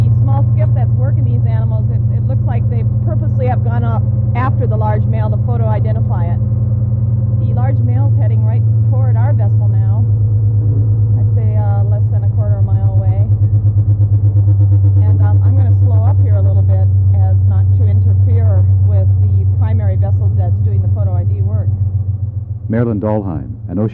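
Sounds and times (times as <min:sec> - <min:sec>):
boat engine droning on the water: 0:00.0 - 0:23.9
speech: 0:03.6 - 0:06.8, 0:07.4 - 0:10.2, 0:22.7 - 0:23.9.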